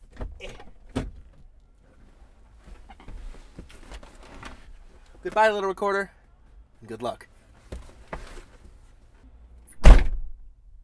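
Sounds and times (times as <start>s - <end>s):
speech: 5.2s - 6.2s, 6.8s - 7.3s
car door shutting: 9.8s - 10.4s.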